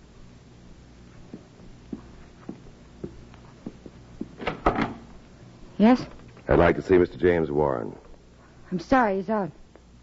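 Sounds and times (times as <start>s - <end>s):
soft footsteps: 1.1s - 6.5s
door opening with a rattle: 4.4s - 5.1s
speech: 5.8s - 8.0s, 8.7s - 9.6s.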